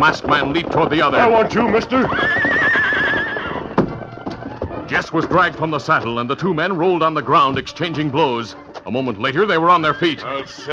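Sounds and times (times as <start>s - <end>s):
speech: 0.0s - 2.6s, 4.9s - 10.7s
hoof thuds: 0.0s - 10.7s
horse whinnying during a chase: 0.9s - 5.1s, 9.5s - 10.7s.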